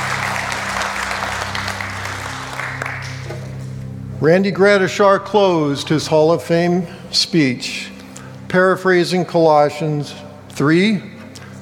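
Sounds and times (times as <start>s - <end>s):
audience clapping: 0.0s - 3.6s
low steady hum: 0.0s - 11.6s
speech: 4.2s - 7.9s, 8.5s - 11.1s.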